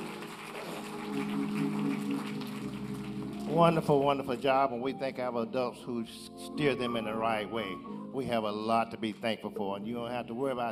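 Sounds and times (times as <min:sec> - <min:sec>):
audience applause: 0:00.0 - 0:04.6
speech: 0:03.6 - 0:10.6.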